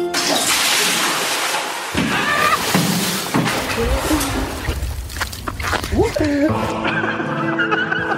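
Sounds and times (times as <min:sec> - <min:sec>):
bucket of ice water dumped on someone with a loud sloshing splash: 0:00.2 - 0:06.4
people shrieking: 0:01.9 - 0:02.8
people laughing: 0:05.9 - 0:08.1.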